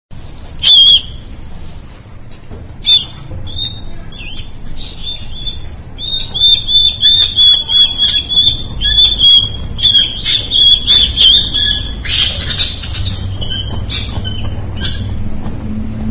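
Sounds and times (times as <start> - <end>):
dying mouse squealing in distress: 2.8 - 15.2.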